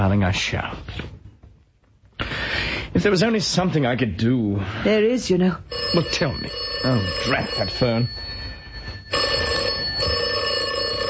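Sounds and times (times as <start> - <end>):
speech: 0.0 - 1.2, 2.9 - 8.3
telephone bell ringing: 5.7 - 11.0.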